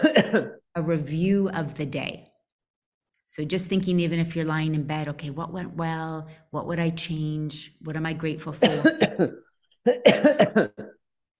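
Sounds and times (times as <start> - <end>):
harsh coughing: 0.0 - 0.6, 8.6 - 11.0
speech: 0.3 - 2.3, 3.3 - 11.0.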